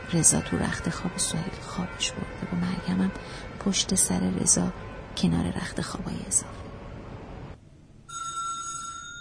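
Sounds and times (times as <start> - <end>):
speech: 0.1 - 6.7
house doorbell ringing with an electronic tone: 8.1 - 9.1.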